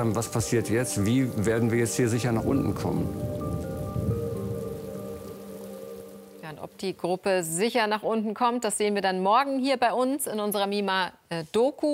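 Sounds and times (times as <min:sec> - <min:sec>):
speech: 0:00.0 - 0:03.5, 0:06.6 - 0:11.9
heavy rain during a mountain storm: 0:00.0 - 0:07.1.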